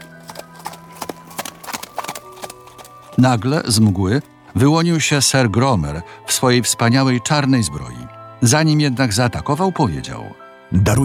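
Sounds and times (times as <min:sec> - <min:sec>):
horse stamping and clopping its hooves: 0:00.0 - 0:04.5
speech: 0:03.2 - 0:11.0.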